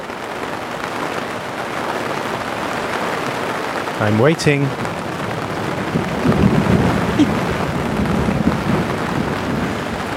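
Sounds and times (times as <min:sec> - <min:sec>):
steady rain spattering on a hard surface: 0:00.0 - 0:10.1
speech: 0:04.0 - 0:04.8, 0:07.2 - 0:07.5
deep steady rumble of thunder: 0:04.7 - 0:10.1.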